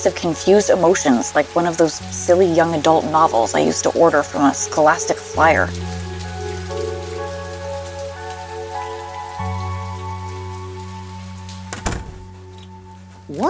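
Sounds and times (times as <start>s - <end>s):
speech: 0.0s - 5.9s
heavy rain falling: 0.0s - 13.4s
thump: 11.7s - 12.4s.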